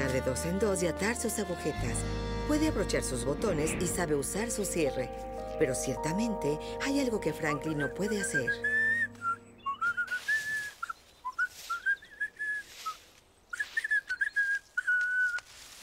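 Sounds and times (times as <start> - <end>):
speech: 0.2 - 8.8
person whistling a bright wavering tune: 8.2 - 15.4.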